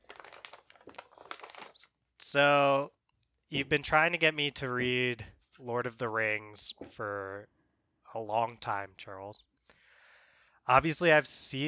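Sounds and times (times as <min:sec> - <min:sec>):
sheet of paper crinkling as it is folded and creased: 0:00.0 - 0:01.9
speech: 0:02.2 - 0:09.5, 0:10.7 - 0:11.6.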